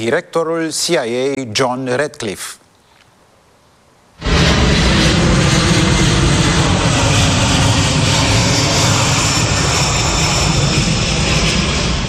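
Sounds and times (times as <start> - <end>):
speech: 0.0 - 2.6
C-17 military transport plane engines roaring: 4.2 - 12.0.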